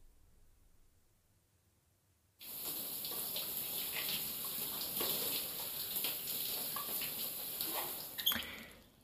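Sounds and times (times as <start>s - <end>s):
water running in a bath while someone is being washed: 2.4s - 9.0s.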